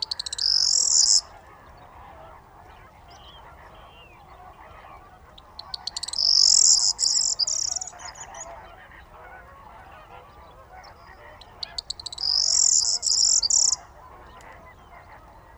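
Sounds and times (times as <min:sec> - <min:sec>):
corn bunting singing jangly phrases at dawn in the Camargue salt marsh: 0:00.0 - 0:01.8, 0:05.2 - 0:08.6, 0:10.8 - 0:15.5
soft background chatter of birds waking at dawn in reeds: 0:00.0 - 0:15.5.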